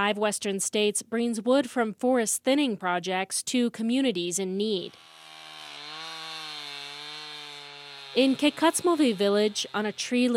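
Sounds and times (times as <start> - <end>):
speech: 0.0 - 5.2, 8.2 - 10.3
chainsaw cutting a log: 4.6 - 10.3.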